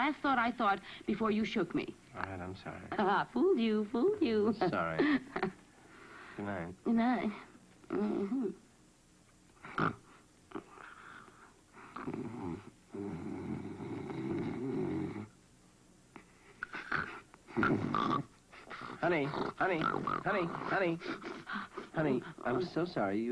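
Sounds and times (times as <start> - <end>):
speech: 0.0 - 5.6, 6.4 - 8.6, 9.6 - 10.7, 12.0 - 13.4, 17.6 - 18.3, 19.0 - 23.3
loud rasping snoring with snorts: 9.6 - 11.0, 11.8 - 15.3, 16.7 - 21.0.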